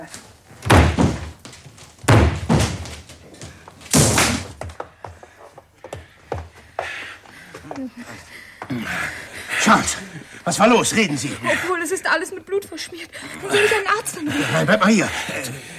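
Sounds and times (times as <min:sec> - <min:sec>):
speech: 0:00.0 - 0:00.3, 0:07.8 - 0:15.7
heavy splintering thuds on a locked door being broken open: 0:00.6 - 0:01.4, 0:02.0 - 0:03.1, 0:03.9 - 0:04.8
softer knocks and scraping as the door gives way: 0:00.6 - 0:07.0.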